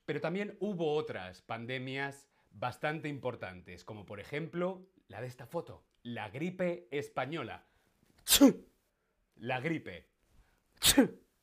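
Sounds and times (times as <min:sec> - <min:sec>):
speech: 0:00.1 - 0:08.7, 0:09.4 - 0:10.1, 0:10.8 - 0:11.2
person sneezing: 0:08.2 - 0:08.7, 0:10.8 - 0:11.3.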